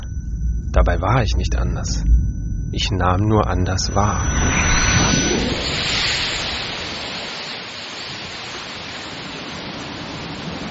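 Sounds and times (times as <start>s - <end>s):
speech: 0.7s - 6.2s
sea waves breaking on shore: 4.9s - 10.7s.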